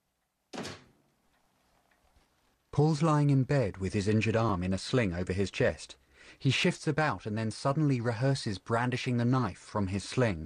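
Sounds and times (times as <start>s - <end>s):
door closing behind a man in a wheelchair: 0.5s - 1.0s
speech: 2.8s - 10.4s.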